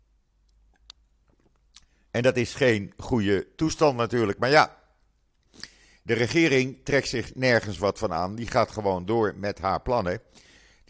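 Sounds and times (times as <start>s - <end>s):
soft wet mouth clicks: 0.7s - 2.0s, 5.4s - 5.8s
speech: 2.2s - 4.8s, 5.5s - 10.8s
person sipping water: 5.4s - 5.8s.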